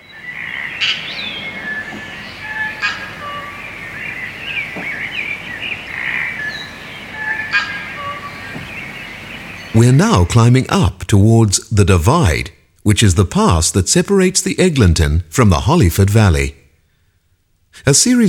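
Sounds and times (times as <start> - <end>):
chorus of New Zealand native birds calling: 0.0 - 10.5
speech: 9.8 - 16.6, 17.8 - 18.2.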